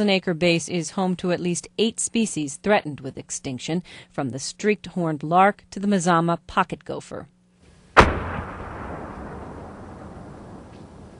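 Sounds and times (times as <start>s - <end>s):
speech: 0.0s - 7.4s
mortar round exploding over a wide-open field on an army base: 7.9s - 11.1s.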